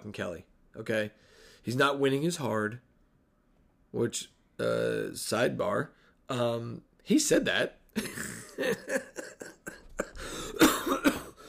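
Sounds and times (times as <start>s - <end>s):
speech: 0.0s - 2.9s, 3.9s - 9.4s
harsh coughing fit: 8.0s - 11.4s
throat clearing: 9.2s - 11.4s.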